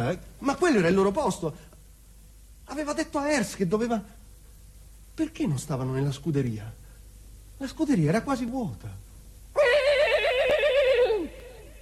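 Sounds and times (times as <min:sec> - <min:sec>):
speech: 0:00.0 - 0:01.7, 0:02.7 - 0:04.2, 0:05.2 - 0:06.8, 0:07.6 - 0:09.0
horse neighing: 0:09.6 - 0:11.5.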